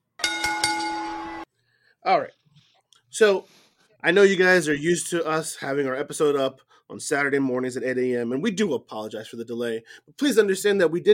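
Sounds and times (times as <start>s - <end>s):
bell ringing: 0.2s - 1.4s
speech: 2.0s - 2.4s, 3.1s - 11.1s.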